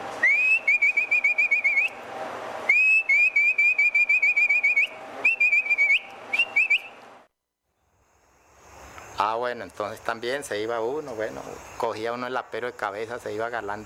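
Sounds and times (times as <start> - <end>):
loud herding whistle for driving horses and pack animals toward the corral: 0.2 - 2.0, 2.7 - 7.0
speech: 9.4 - 13.8.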